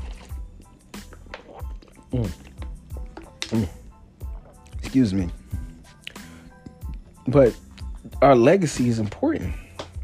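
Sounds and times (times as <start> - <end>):
person gulping water: 1.3 - 4.8
speech: 2.1 - 2.4, 3.5 - 3.8, 5.0 - 5.4, 7.3 - 7.6, 8.2 - 9.6.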